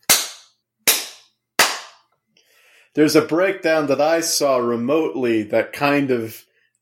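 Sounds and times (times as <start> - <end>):
hand claps: 0.0 - 2.1
speech: 2.9 - 6.5.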